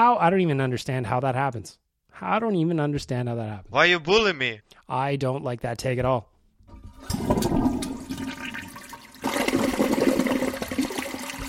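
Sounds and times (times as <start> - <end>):
speech: 0.0 - 6.3
toilet flushing: 6.7 - 11.4.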